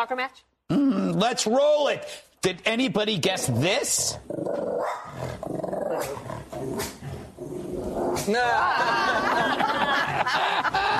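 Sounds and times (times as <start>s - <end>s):
speech: 0.0s - 7.3s, 7.9s - 10.9s
dog barking and growling at an elephant: 4.6s - 8.3s
laughter: 8.4s - 10.9s.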